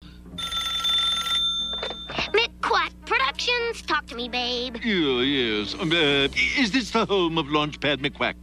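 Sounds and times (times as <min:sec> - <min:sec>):
telephone ringing with an electronic trill: 0:00.4 - 0:02.4
speech: 0:02.7 - 0:08.4.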